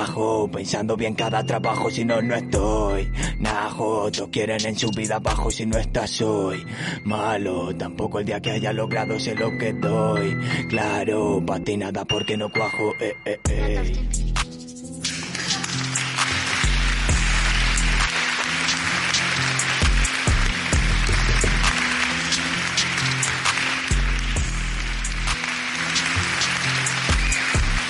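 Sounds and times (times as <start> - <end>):
speech: 0.1 - 14.2
deep thumping bass beat: 13.5 - 14.5, 16.7 - 18.0, 19.8 - 21.8
crowd applauding after a rap performance: 15.1 - 27.8.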